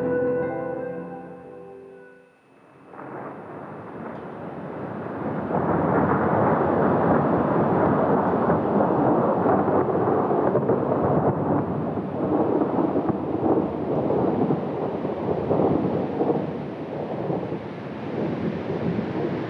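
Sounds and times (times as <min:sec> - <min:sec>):
short musical tone: 0:00.0 - 0:02.6
spring thunder rumbling: 0:02.9 - 0:19.4.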